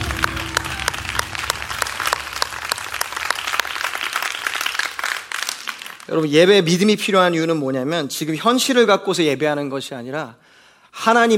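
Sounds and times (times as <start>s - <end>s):
congregational applause during a church worship service: 0.0s - 6.1s
speech: 6.1s - 11.3s.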